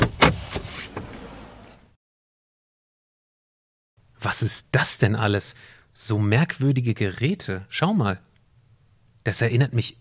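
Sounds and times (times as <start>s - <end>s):
car door opening with sharp mechanical clunks: 0.0s - 1.8s
speech: 4.2s - 8.3s, 9.2s - 9.9s.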